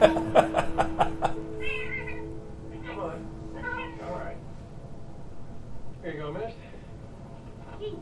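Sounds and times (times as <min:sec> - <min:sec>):
soft rhythmic pulses: 0:00.0 - 0:08.0
steady hum: 0:00.0 - 0:08.0
cat meowing in a film scene: 0:01.6 - 0:02.3.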